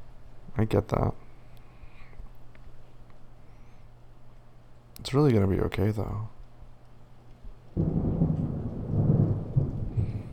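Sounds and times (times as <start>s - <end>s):
speech: 0.6s - 1.2s, 5.1s - 6.4s, 7.8s - 8.0s
rain pattering: 7.2s - 10.3s
deep roll of thunder rumbling during a storm: 7.8s - 10.3s.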